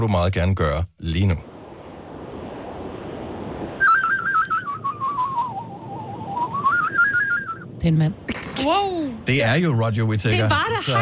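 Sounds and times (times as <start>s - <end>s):
speech: 0.0s - 1.5s, 7.8s - 10.9s
man whistling a melody over a phone line: 3.8s - 7.7s.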